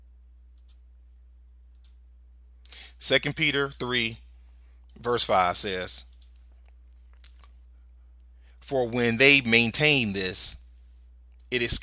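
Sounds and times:
steady low electrical hum: 0:00.0 - 0:11.8
computer mouse clicks: 0:00.5 - 0:00.8, 0:01.7 - 0:02.0, 0:06.1 - 0:07.6
speech: 0:03.0 - 0:04.2, 0:05.0 - 0:06.1, 0:08.7 - 0:10.6, 0:11.5 - 0:11.8.

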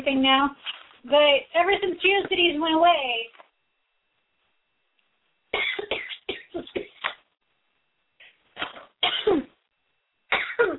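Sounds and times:
speech: 0:00.0 - 0:03.4, 0:10.3 - 0:10.7
person coughing: 0:05.5 - 0:07.2, 0:08.2 - 0:09.6, 0:10.3 - 0:10.7.

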